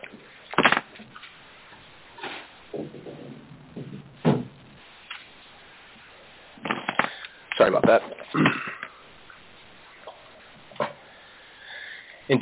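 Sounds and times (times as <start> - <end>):
door being handled and shut: 3.8 - 4.6
speech: 7.6 - 8.6.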